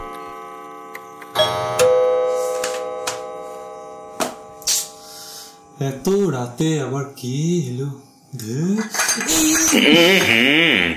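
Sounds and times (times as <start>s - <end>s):
doorbell ringing: 0.0s - 6.6s
clock chiming: 0.0s - 7.1s
speech: 5.8s - 10.9s.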